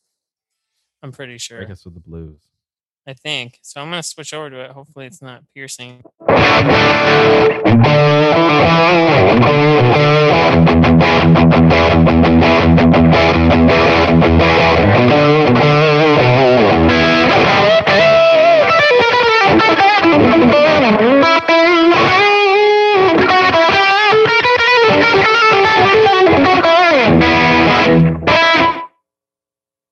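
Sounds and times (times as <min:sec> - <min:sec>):
speech: 0:01.0 - 0:15.9
overdriven electric guitar through a Fender Deluxe amp with slapback delay: 0:06.0 - 0:28.9.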